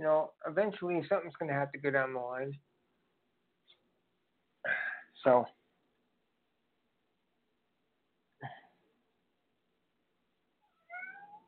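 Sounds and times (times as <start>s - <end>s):
speech: 0.0s - 2.7s, 4.6s - 5.6s
cat meowing in the studio: 10.6s - 11.4s.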